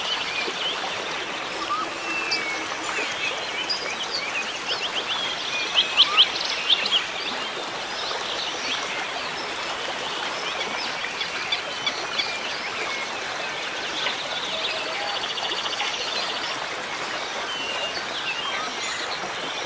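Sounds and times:
rainforest birds chirping and trilling: 0:00.0 - 0:07.1
rainforest river flowing: 0:00.0 - 0:19.6.

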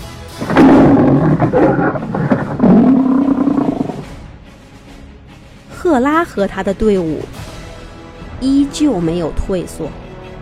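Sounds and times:
provoked male lion roaring: 0:00.4 - 0:04.1
speech: 0:01.4 - 0:02.2, 0:05.9 - 0:07.4, 0:08.4 - 0:10.0.

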